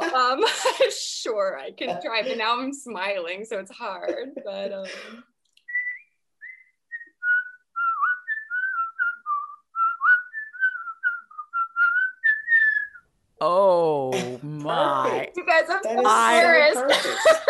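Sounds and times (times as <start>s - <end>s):
speech: 0.3s - 5.3s, 13.4s - 17.4s
person whistling a tuneful melody: 5.7s - 13.0s
laughter: 15.0s - 17.4s.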